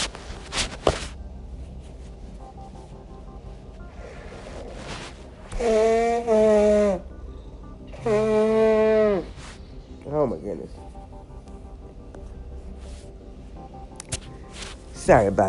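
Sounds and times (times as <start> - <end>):
person blowing nose: 4.4 - 7.0, 8.0 - 9.6
speech: 10.4 - 11.0, 15.1 - 15.4.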